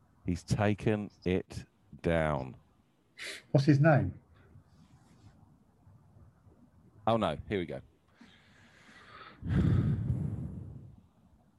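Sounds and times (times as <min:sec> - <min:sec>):
speech: 0:00.3 - 0:02.6, 0:03.2 - 0:04.2, 0:07.1 - 0:07.9, 0:09.4 - 0:09.8
heavy nasal breathing into a microphone: 0:03.2 - 0:03.6, 0:08.2 - 0:10.9.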